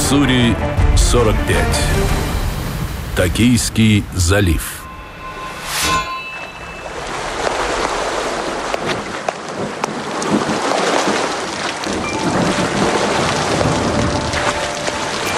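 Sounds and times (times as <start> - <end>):
speech: 0.1 - 2.2, 3.2 - 4.7
heavy rain: 1.0 - 4.2, 7.2 - 15.3
short tonal burst: 4.4 - 8.0
low thunder rumbling: 11.8 - 15.0.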